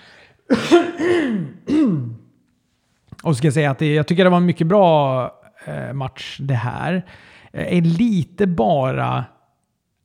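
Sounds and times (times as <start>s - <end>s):
guttural throat clearing: 0.5s - 2.3s
person coughing: 0.5s - 2.3s
speech: 3.3s - 9.4s.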